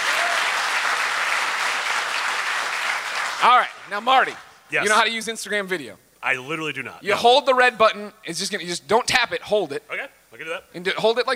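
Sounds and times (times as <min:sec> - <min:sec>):
crowd applauding: 0:00.0 - 0:04.5
speech: 0:03.4 - 0:11.3.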